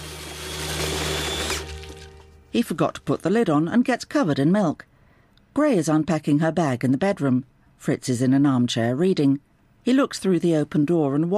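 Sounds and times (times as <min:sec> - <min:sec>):
blender whirring while blending milk and strawberries: 0:00.0 - 0:02.3
speech: 0:02.6 - 0:04.9, 0:05.6 - 0:11.3.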